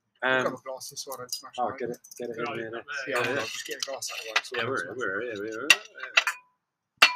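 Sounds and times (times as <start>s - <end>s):
people talking: 0.2s - 6.3s
drinking glass knocking against a table: 5.7s - 7.1s.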